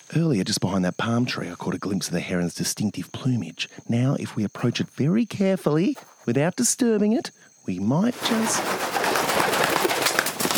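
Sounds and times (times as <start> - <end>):
speech: 0.1 - 9.0
steady rustling outdoor background in a tropical setting: 0.2 - 10.5
pigeon cooing softly in a tropical setting: 4.4 - 4.9, 5.9 - 6.3, 8.2 - 10.5.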